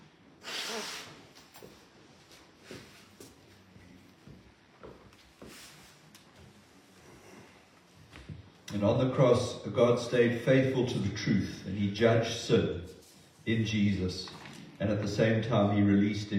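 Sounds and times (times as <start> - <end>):
sniffing: 0.4 - 1.2
nose blowing: 0.4 - 1.3
rustling and shuffling: 1.4 - 8.6
speech: 8.8 - 12.9, 13.5 - 16.3.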